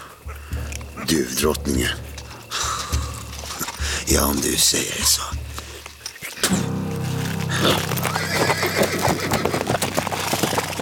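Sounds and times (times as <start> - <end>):
hooves clopping: 0.0 - 10.8
speech: 1.1 - 2.1, 4.1 - 5.6
horse neighing: 7.6 - 10.6.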